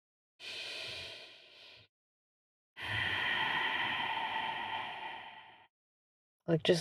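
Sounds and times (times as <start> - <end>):
deep mindful breath: 0.4 - 1.9, 2.8 - 5.7.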